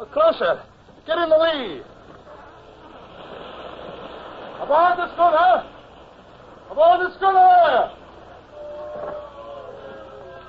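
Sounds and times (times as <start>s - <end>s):
speech: 0.2s - 1.9s, 4.6s - 5.7s, 6.7s - 8.0s
surging ocean surf roaring: 0.7s - 10.4s.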